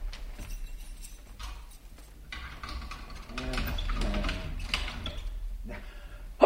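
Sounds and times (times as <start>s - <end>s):
key turning in a door lock: 0.4s - 5.4s.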